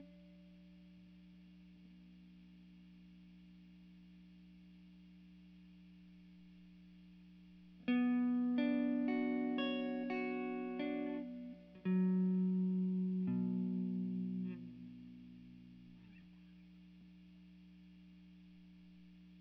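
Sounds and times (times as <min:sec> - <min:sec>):
guitar recorded with RE20 microphone: 0:00.0 - 0:01.1, 0:07.6 - 0:19.3.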